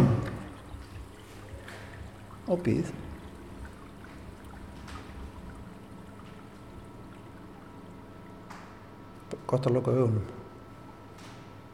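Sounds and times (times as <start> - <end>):
shower water running after a button press in an art installation: 0.0 - 8.7
speech: 2.5 - 3.1, 9.5 - 10.4.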